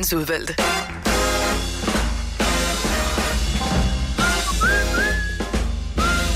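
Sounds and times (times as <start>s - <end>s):
speech: 0.0s - 1.0s
full loud music backing: 0.4s - 6.3s
person whistling a melody with gliding rising notes: 4.2s - 6.3s.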